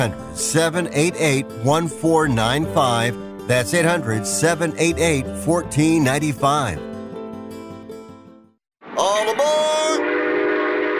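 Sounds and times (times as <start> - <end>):
speech: 0.0 - 6.9
brief musical passage: 0.0 - 8.6
passing train rumbling: 8.8 - 10.9
train horn blaring: 9.8 - 10.9.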